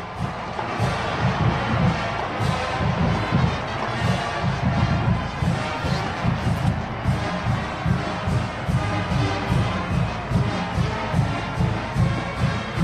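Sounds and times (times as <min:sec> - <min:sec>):
stadium crowd roaring: 0:00.0 - 0:12.8
steady rhythmic thumps: 0:00.0 - 0:12.8.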